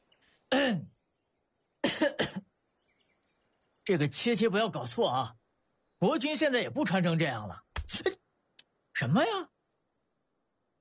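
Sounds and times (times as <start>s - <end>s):
dry throaty cough: 1.8s - 2.5s
speech: 3.9s - 5.4s, 6.0s - 8.2s, 9.0s - 9.5s.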